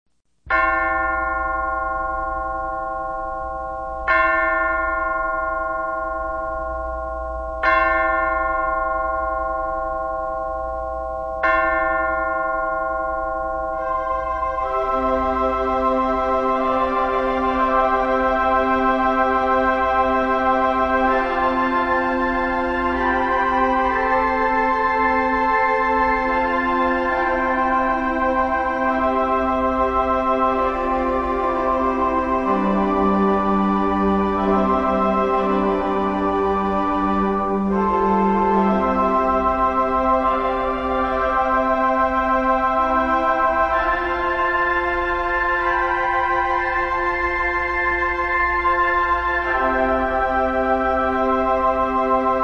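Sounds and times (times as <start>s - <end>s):
chimes: 0.5s - 52.4s
cathedral organ: 13.8s - 52.4s.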